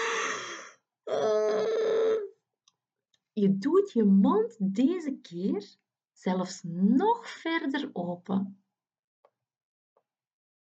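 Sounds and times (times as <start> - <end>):
person yawning: 0.0 - 2.3
speech: 3.4 - 8.6.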